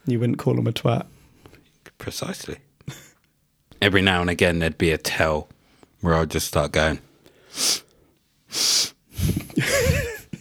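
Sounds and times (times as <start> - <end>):
speech: 0.0 - 1.2, 2.0 - 3.1, 3.8 - 7.7
person performing loud exaggerated sniffing: 7.4 - 9.6
person snorting: 8.5 - 10.3
laughter: 9.3 - 10.4.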